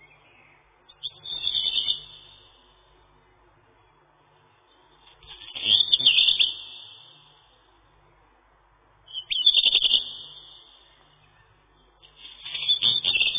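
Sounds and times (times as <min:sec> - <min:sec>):
black redstart Phoenicurus ochruros singing scratchy phrases: 0:00.0 - 0:03.0, 0:04.6 - 0:07.6, 0:09.1 - 0:13.3.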